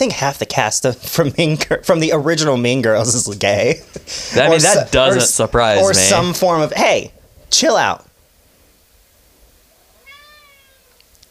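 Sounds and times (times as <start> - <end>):
speech: 0.0 - 8.1
low hiss: 0.0 - 11.3
cat meowing: 9.8 - 11.1.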